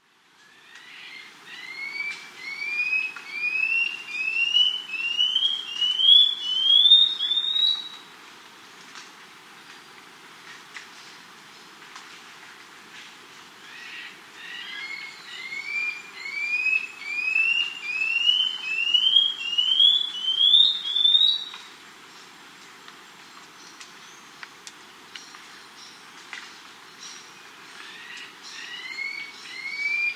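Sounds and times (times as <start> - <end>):
Scale-backed antbird calling in South America: 0.5 - 8.0, 13.7 - 21.6, 27.7 - 30.1.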